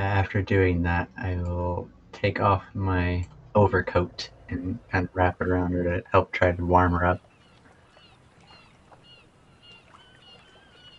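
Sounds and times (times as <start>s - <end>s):
speech: 0.2s - 7.3s
seagulls crying over water: 7.4s - 10.9s.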